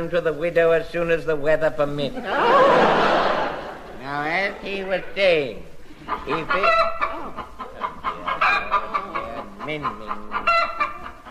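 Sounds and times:
speech: 0:00.0 - 0:03.3, 0:04.0 - 0:07.0, 0:09.7 - 0:10.6
laughter: 0:02.1 - 0:05.1, 0:05.8 - 0:10.6
hen clucking and squawking while being handed over: 0:05.8 - 0:11.2.

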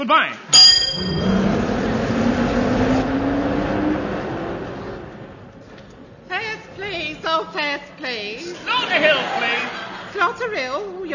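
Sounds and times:
speech: 0:00.0 - 0:01.1, 0:07.4 - 0:09.6, 0:10.2 - 0:11.1
large bus engine droning while accelerating: 0:00.6 - 0:10.1
road noise: 0:00.6 - 0:10.1
laughter: 0:08.3 - 0:10.7.

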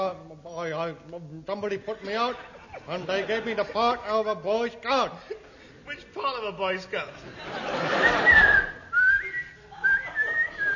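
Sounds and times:
speech: 0:00.0 - 0:08.7
laughter: 0:01.8 - 0:04.3, 0:07.1 - 0:10.7
shrill whistle blown in short blasts: 0:08.0 - 0:10.7.

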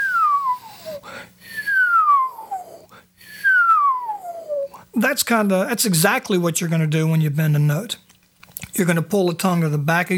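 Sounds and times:
whistling by breathing in with falling pitch: 0:00.0 - 0:04.8
speech: 0:05.0 - 0:08.0, 0:08.8 - 0:10.1.

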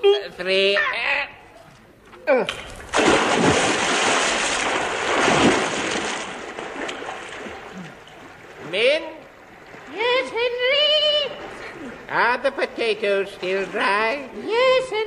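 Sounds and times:
speech: 0:00.2 - 0:01.2, 0:02.3 - 0:02.7, 0:12.2 - 0:15.0
object thrown into a river splashing: 0:02.5 - 0:07.8
rushing churning river water: 0:03.0 - 0:12.3.

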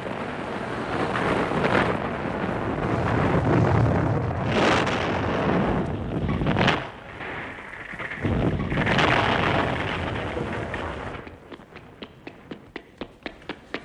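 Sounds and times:
barrels of damp gunpowder exploding after being dried by a fire: 0:00.0 - 0:13.8
faint regular taps: 0:11.2 - 0:13.8.

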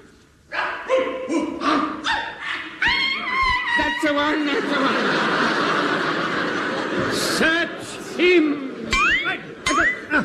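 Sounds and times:
long-haired sheepdogs barking: 0:00.5 - 0:02.8
laughter: 0:01.3 - 0:10.2
speech: 0:04.1 - 0:05.3, 0:07.1 - 0:08.6.

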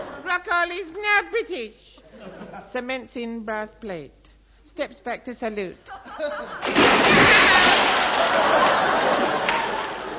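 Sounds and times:
speech: 0:00.6 - 0:09.1
laughter: 0:02.1 - 0:02.8, 0:05.9 - 0:06.8, 0:07.4 - 0:10.1
loud splashing and sloshing water: 0:06.6 - 0:10.0.

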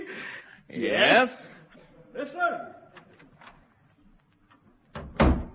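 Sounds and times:
speech: 0:00.8 - 0:01.5
door swinging shut with a solid thud: 0:04.9 - 0:05.5.

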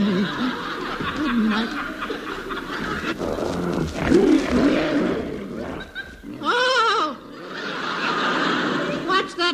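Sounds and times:
laughter: 0:00.0 - 0:04.5, 0:05.5 - 0:09.4
tiger roaring: 0:00.3 - 0:06.8.

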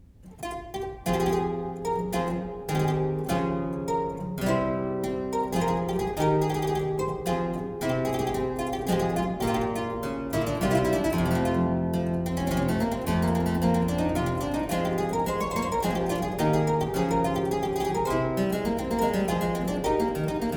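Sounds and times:
galliard on harpsichord with lute stop: 0:01.1 - 0:20.5.

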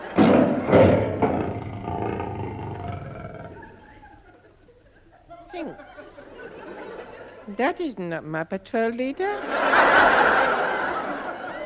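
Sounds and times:
tiger roaring: 0:00.0 - 0:03.8
laughter: 0:00.0 - 0:07.6, 0:09.4 - 0:11.6
speech: 0:07.6 - 0:10.7.

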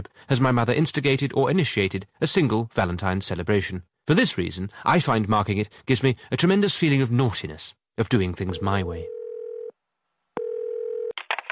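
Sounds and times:
speech: 0:00.0 - 0:09.2
telephone steady tones: 0:08.6 - 0:09.7, 0:10.4 - 0:11.2.

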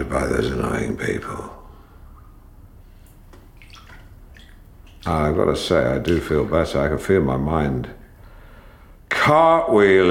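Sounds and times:
speech: 0:00.0 - 0:01.6, 0:05.0 - 0:08.0, 0:09.2 - 0:10.1
small splashes and drips: 0:01.9 - 0:05.3, 0:06.0 - 0:06.5
water sloshing and lapping in a flotation tank: 0:01.9 - 0:05.3, 0:05.9 - 0:06.5.

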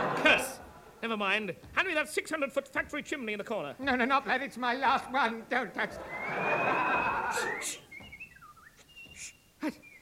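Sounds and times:
laughter: 0:00.0 - 0:00.9, 0:05.8 - 0:07.8
speech: 0:01.0 - 0:07.9, 0:09.6 - 0:09.8
person whistling a short wavering tune: 0:06.1 - 0:10.0.

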